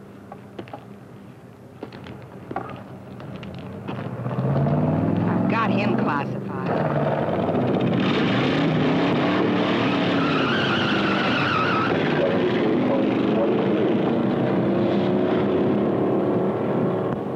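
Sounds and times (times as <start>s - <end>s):
car engine roaring while being test driven: 2.6s - 17.3s
tires squealing and skidding: 6.7s - 16.9s.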